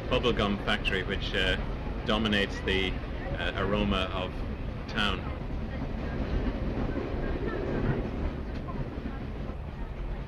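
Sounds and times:
passenger train rolling along the rails heard from inside the carriage: 0.0s - 10.2s
speech: 0.2s - 5.3s.

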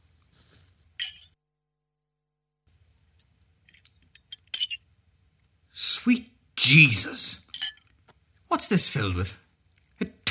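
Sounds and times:
glasses clinking in a toast: 1.0s - 1.4s, 7.5s - 7.9s
speech: 6.0s - 7.4s, 8.6s - 9.4s.

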